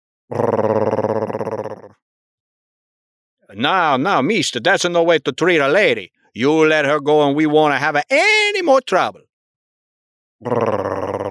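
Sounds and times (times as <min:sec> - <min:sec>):
speech: 0:00.3 - 0:00.6, 0:03.6 - 0:09.3, 0:10.4 - 0:10.9
creature growling: 0:00.3 - 0:02.0, 0:10.4 - 0:11.2.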